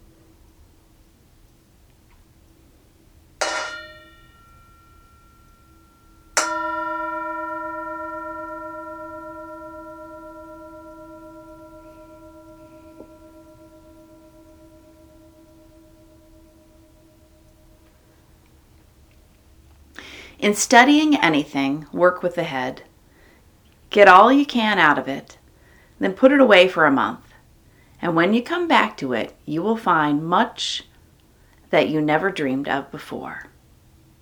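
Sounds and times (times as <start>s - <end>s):
singing bowl tapped and struck, ringing: 3.4s - 18.2s
speech: 20.4s - 22.9s, 23.9s - 25.4s, 26.0s - 27.2s, 28.0s - 30.9s, 31.7s - 33.5s.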